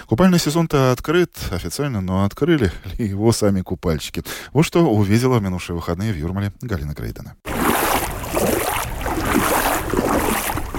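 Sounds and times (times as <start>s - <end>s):
speech: 0.1s - 8.6s
sea waves washing along a shoreline: 7.5s - 10.7s.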